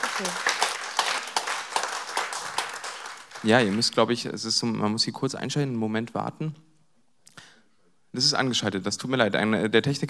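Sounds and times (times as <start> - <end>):
audience applauding at a literary reading: 0.0 - 4.2
speech: 0.2 - 0.5, 3.4 - 6.7, 8.2 - 10.0.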